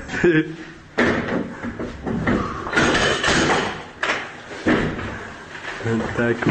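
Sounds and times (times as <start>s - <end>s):
apartment doors being forced open by soldiers: 0.9s - 5.3s
people talking: 5.8s - 6.4s.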